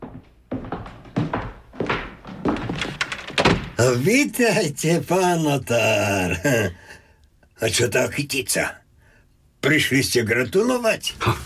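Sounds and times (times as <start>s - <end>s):
front door being opened with solid wooden thunks: 1.8s - 3.8s
front door latch clatter: 2.8s - 3.8s
speech: 3.8s - 6.9s, 7.6s - 8.8s, 9.6s - 11.4s.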